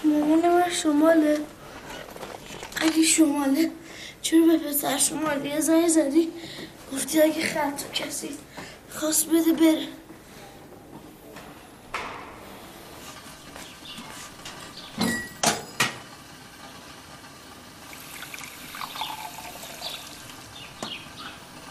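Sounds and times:
speech: 0.2 - 1.6, 2.8 - 10.0
glass or jug clinking: 15.0 - 15.9, 18.2 - 20.1
cold water being poured: 17.9 - 20.5.

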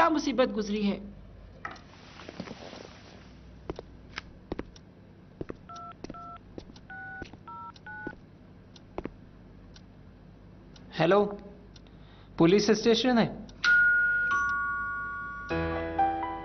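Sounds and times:
low hum: 0.0 - 15.5
speech: 0.1 - 1.2, 11.0 - 11.4, 12.4 - 13.4
clicks and taps of keypad presses: 5.4 - 9.9
dual-tone telephone keypad beeps: 5.7 - 8.2.

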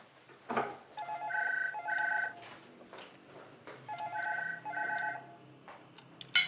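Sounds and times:
telephone ringing with short trilling rings: 1.0 - 2.6, 3.9 - 5.4.

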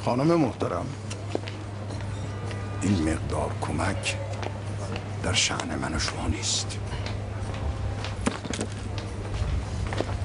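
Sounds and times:
speech: 0.0 - 1.1, 2.8 - 4.3, 5.2 - 7.0
woman's footsteps walking at a brisk pace: 1.1 - 2.7, 4.3 - 10.2.

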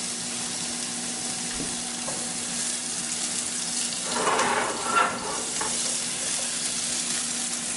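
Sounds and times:
food sautéing in a pan: 0.0 - 7.7
spatula stirring food in a pan: 4.1 - 6.5.

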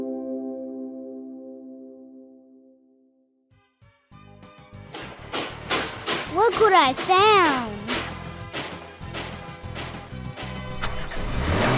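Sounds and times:
speech: 6.4 - 7.8
car engine revving as the vehicle pulls off: 9.8 - 11.7.

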